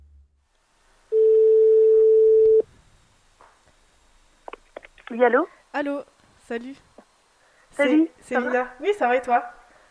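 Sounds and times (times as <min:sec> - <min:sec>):
phone ringback tone: 0:01.1 - 0:02.6
speech: 0:05.2 - 0:06.9, 0:07.8 - 0:09.6.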